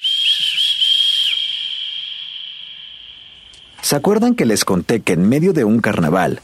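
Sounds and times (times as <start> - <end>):
loud piercing human whistle: 0.0 - 3.8
speech: 3.9 - 6.4.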